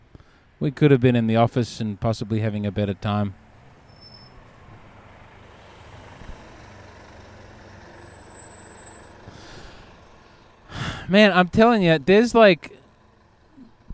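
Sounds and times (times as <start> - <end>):
heavy bus engine idling: 0.0 - 13.9
speech: 0.6 - 3.4, 11.1 - 12.8
bus air brakes hissing: 8.0 - 11.1.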